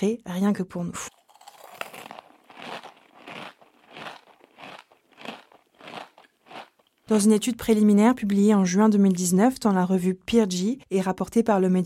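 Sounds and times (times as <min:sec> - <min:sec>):
speech: 0:00.0 - 0:01.2, 0:07.1 - 0:11.8
close-up ASMR-style crunchy chewing: 0:01.1 - 0:07.1
crackly mouth sounds: 0:01.2 - 0:07.1.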